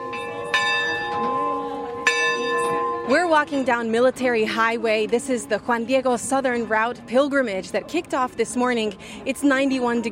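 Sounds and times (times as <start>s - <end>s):
bell ringing on a flower-covered Eucharistic float in a Catholic procession: 0.0s - 4.0s
speech: 3.1s - 10.0s.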